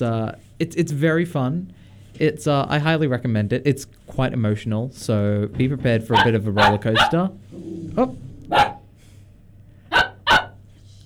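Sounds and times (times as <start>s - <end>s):
speech: 0.0s - 8.7s
low hum: 0.0s - 11.0s
dog barking: 6.1s - 7.2s, 8.5s - 8.9s, 9.9s - 10.6s.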